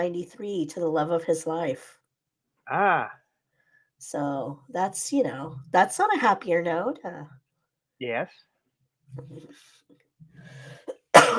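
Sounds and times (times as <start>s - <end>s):
speech: 0.0s - 2.0s, 2.7s - 3.2s, 4.0s - 7.4s, 8.0s - 8.5s, 9.1s - 11.3s
harsh cough: 10.8s - 11.3s
person clearing throat: 10.8s - 11.3s.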